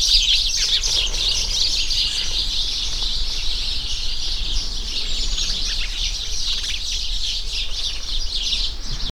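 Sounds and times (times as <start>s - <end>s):
flock of house sparrows chirping: 0.0s - 9.0s.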